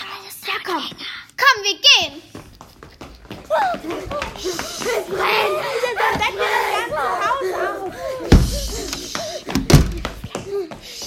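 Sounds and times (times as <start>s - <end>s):
speech: 0.6s - 2.4s
laughter: 3.5s - 9.6s
heavy door thudding: 8.3s - 10.2s.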